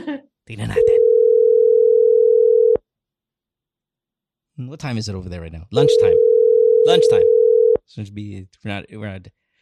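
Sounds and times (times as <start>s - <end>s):
speech: 0.5s - 0.8s, 4.7s - 9.4s
low electronic telephone ringing tone on an outgoing call: 0.8s - 2.8s, 5.8s - 7.8s.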